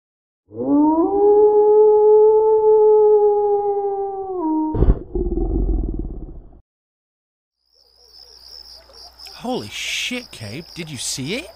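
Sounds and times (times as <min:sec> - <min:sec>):
wolf howling: 0:00.5 - 0:04.8
speech: 0:10.1 - 0:11.5.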